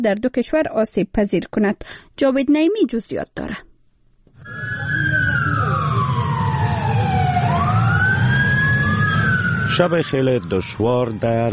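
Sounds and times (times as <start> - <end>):
speech: 0.0 - 3.7, 9.8 - 11.5
ambulance siren wailing in an earthquake-stricken area: 4.4 - 11.5
low engine rumble: 4.4 - 11.5.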